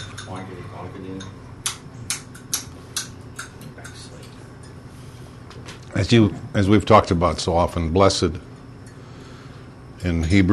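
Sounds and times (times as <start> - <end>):
spoon clinking against a coffee cup while stirring: 0.0 - 0.6, 1.2 - 1.4, 2.3 - 4.8
speech: 0.3 - 1.5, 5.6 - 8.5, 10.0 - 10.5.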